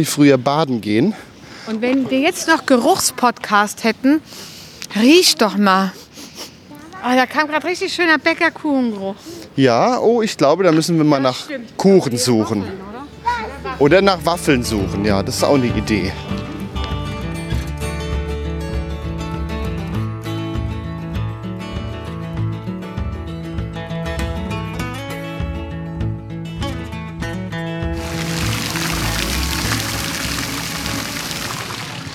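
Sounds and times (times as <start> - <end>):
speech: 0.0 - 6.0, 7.0 - 12.9, 13.8 - 16.5
music: 13.1 - 32.1
bubbling spring water fountain: 28.0 - 32.1.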